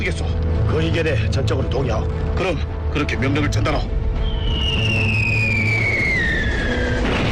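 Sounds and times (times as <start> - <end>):
dense continuous rumble: 0.0 - 7.2
speech: 0.1 - 4.0
shrill falling whistle of an incoming artillery shell: 4.2 - 7.2.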